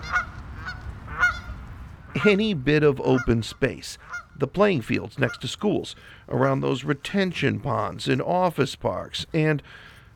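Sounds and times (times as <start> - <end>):
geese honking: 0.0 - 7.1
speech: 2.2 - 9.9.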